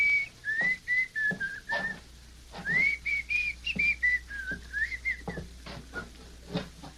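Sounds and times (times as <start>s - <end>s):
man whistling a slow wavering tune: 0.0s - 2.0s, 2.6s - 6.2s
soft footsteps or knocks: 0.5s - 3.1s, 3.7s - 6.9s.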